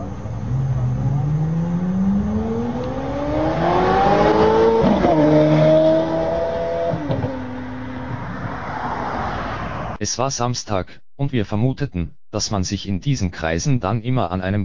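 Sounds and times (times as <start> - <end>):
engines of a convoy of cars pulling away from a traffic light in Singapore: 0.0 - 10.0
speech: 10.1 - 14.6.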